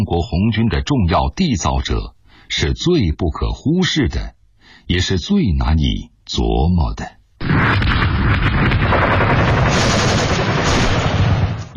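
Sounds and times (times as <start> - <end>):
speech: 0.0 - 10.0
deep rumbling artillery booms: 7.4 - 11.7
gunfire crackling in battle: 7.4 - 11.7.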